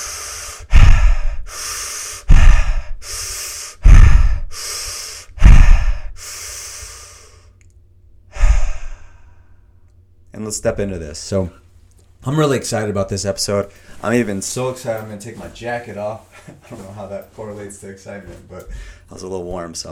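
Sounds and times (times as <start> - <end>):
big deep breaths: 0.0 - 7.6, 8.3 - 9.9, 18.7 - 19.1
speech: 10.4 - 11.6, 12.2 - 19.8.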